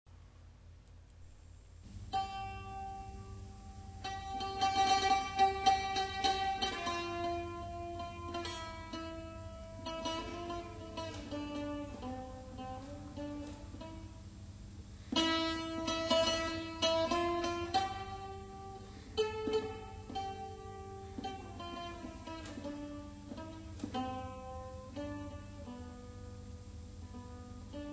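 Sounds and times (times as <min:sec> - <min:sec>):
guitmaur medieval instrument playing: 0:01.9 - 0:27.9.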